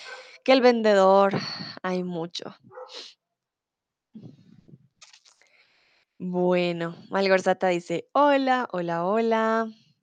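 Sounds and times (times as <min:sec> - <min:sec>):
speech: 0:00.4 - 0:03.2, 0:04.2 - 0:04.4, 0:06.2 - 0:10.0
dog barking and whining in Bogotá: 0:02.7 - 0:03.0.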